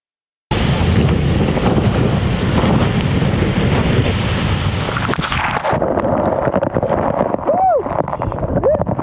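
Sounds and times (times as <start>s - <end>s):
ice-cold water surging from a collapsing glacier ice bridge: 0.7s - 9.0s
glacier ice bridge collapsing with crashing ice: 5.0s - 8.2s.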